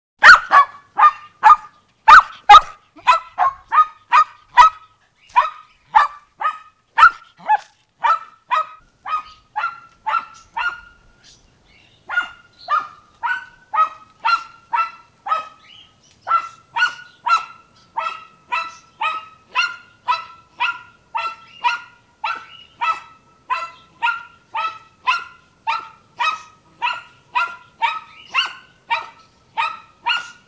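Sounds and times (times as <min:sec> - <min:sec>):
dog: 0:00.2 - 0:10.9, 0:12.1 - 0:15.6, 0:16.2 - 0:30.4.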